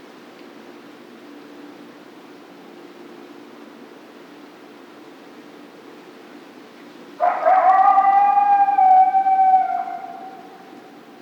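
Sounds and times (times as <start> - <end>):
coyote howling: 7.2 - 11.1.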